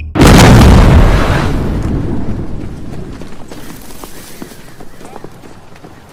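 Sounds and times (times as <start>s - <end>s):
explosion: 0.1s - 2.9s.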